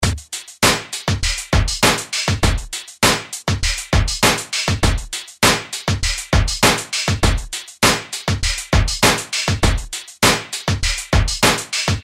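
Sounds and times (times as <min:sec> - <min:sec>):
industrial rhythm: 0:00.0 - 0:12.0.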